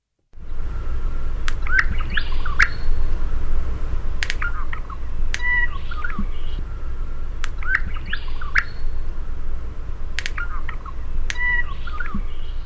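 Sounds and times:
low hiss and rumble: 0.3 - 12.6
honeyeater song with guttural warble: 0.4 - 12.6
honeyeater bill snaps: 1.4 - 2.8, 4.2 - 6.6, 7.4 - 8.8, 10.1 - 12.3.

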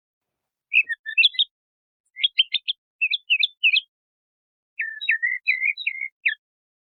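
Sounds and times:
small bird singing rising whistled notes: 0.7 - 1.5, 2.2 - 3.9, 4.8 - 6.4
small bird singing short bursts of high chirps and trills: 0.7 - 3.9, 4.8 - 6.4.

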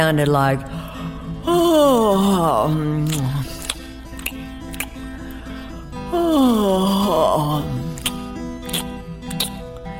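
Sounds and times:
speech: 0.0 - 0.8, 1.5 - 3.6, 6.2 - 7.8
person imitating a tired lion's roar as a yawning moan: 1.5 - 3.7, 6.1 - 8.0.

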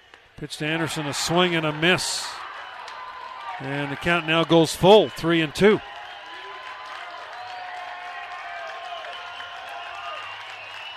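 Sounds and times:
speech: 0.4 - 2.4, 3.6 - 5.9
large baseball crowd cheering and clapping: 0.6 - 10.9
whistles from the crowd: 6.0 - 6.6, 7.3 - 7.9, 8.6 - 10.9.

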